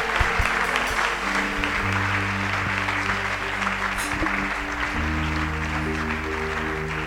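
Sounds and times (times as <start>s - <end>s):
church congregation applauding and acclaiming during a service: 0.0s - 7.0s
sustained low musical tones: 0.0s - 7.0s.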